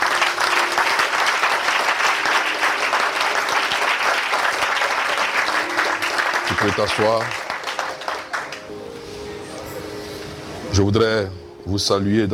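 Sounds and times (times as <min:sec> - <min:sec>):
church congregation clapping during a worship service: 0:00.0 - 0:08.8
speech: 0:06.6 - 0:07.4, 0:10.8 - 0:12.3.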